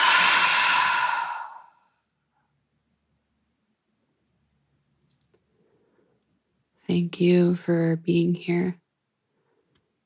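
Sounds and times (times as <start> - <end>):
long airy exhale through the mouth during a guided breathing exercise: 0.0 - 1.8
speech: 6.9 - 8.8.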